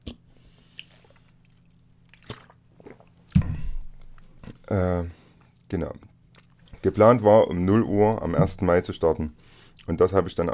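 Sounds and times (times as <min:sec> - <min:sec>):
person taking a quick sip of a drink: 0:00.0 - 0:04.2
speech: 0:04.7 - 0:06.1, 0:06.8 - 0:10.5.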